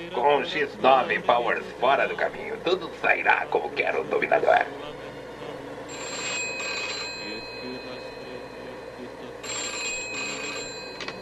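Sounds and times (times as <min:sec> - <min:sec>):
speech: 0:00.1 - 0:05.0
telephone bell ringing on a secret line: 0:05.9 - 0:11.2.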